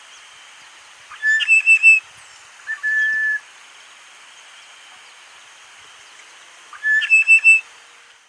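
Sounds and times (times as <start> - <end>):
long steady bird whistle: 0.0 - 8.0
constant high hiss: 0.0 - 8.2
bird whistling and chirping: 1.1 - 3.4, 6.7 - 7.7.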